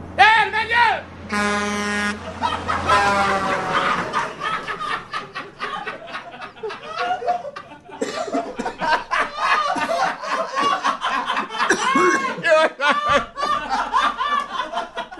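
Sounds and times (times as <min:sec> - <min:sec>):
truck air horn honking: 0:01.2 - 0:04.4
laughter: 0:02.0 - 0:15.1.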